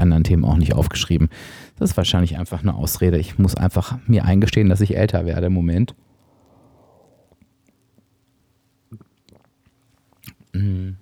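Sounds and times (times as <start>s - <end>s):
speech: 0.0s - 6.0s, 10.6s - 10.9s
sipping latte macchiato made with 0.3% low-fat milk: 8.9s - 10.5s.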